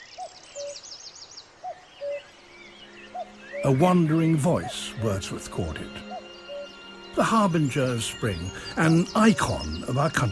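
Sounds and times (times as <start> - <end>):
common cuckoo calling: 0.0 - 10.2
small birds chirping: 0.0 - 10.2
speech: 3.6 - 6.1, 7.2 - 10.2.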